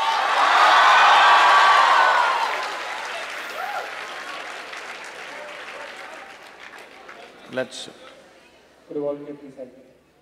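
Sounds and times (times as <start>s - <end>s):
audience applause at a university department event: 0.0s - 7.9s
speech: 7.5s - 8.1s, 8.9s - 9.9s.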